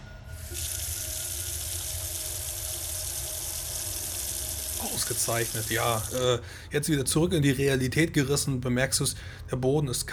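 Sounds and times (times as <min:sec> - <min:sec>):
cold water rushing from a tap into a bedpan: 0:00.4 - 0:06.4
speech: 0:04.9 - 0:10.1.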